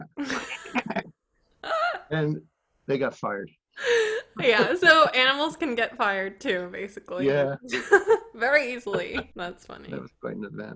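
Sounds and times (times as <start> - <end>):
laughter: 0.0 - 1.1, 1.7 - 5.5, 7.2 - 10.7
speech: 2.1 - 10.7
human voice imitating bleating sheep or goats: 4.2 - 5.2, 7.2 - 7.6, 8.9 - 10.7.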